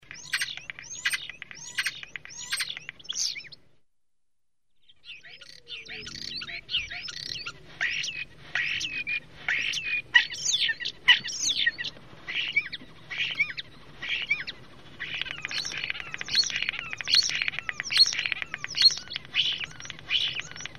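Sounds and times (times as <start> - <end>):
starling calling: 0.0 - 3.6, 5.0 - 20.7.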